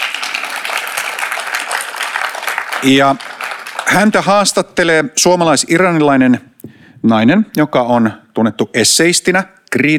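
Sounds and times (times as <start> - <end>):
audience applause welcoming an author at a literary event: 0.0 - 4.5
speech: 2.8 - 3.3, 3.9 - 9.9.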